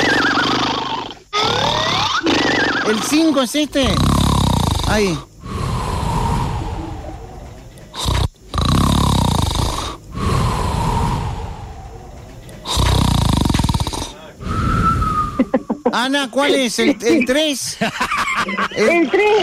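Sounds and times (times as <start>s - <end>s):
loud raspy human snoring: 0.0s - 15.3s
speech: 2.9s - 4.2s, 4.9s - 5.3s, 15.4s - 19.4s
heavy breathing: 3.8s - 15.5s
laughter: 16.6s - 19.4s.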